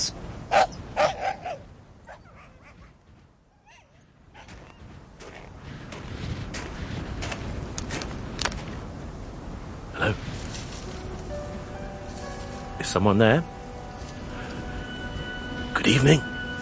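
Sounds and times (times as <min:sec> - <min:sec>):
speech: 0:00.5 - 0:00.8, 0:12.9 - 0:13.6, 0:16.0 - 0:16.3
dogs barking: 0:00.5 - 0:03.0.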